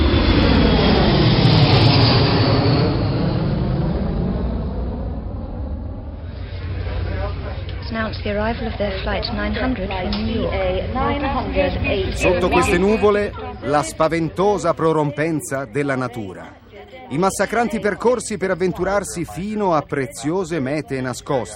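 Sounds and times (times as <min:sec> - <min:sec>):
airplane engine roar during takeoff: 0:00.0 - 0:21.5
speech: 0:08.2 - 0:21.5.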